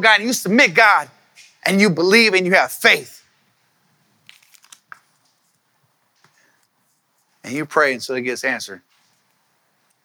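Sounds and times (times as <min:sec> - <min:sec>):
speech: 0:00.0 - 0:03.2, 0:07.4 - 0:08.9
paper crinkling as audience handles sheets of prayer requests: 0:04.2 - 0:05.6.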